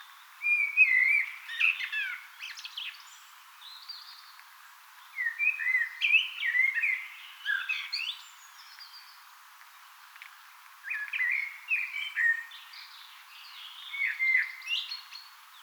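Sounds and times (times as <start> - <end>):
Eurasian blackbird singing: 0.4 - 3.1, 5.2 - 9.1, 10.9 - 15.3.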